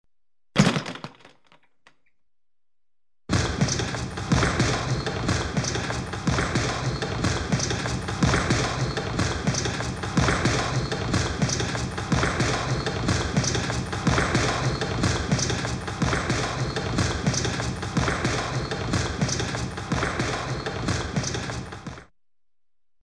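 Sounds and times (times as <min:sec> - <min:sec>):
boxing punching bag hits: 0:03.3 - 0:22.0.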